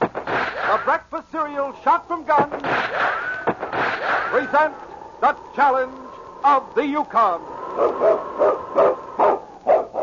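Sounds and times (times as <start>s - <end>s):
speech: 0.7s - 3.3s, 4.3s - 9.4s
husky lead dog barking: 7.7s - 10.0s.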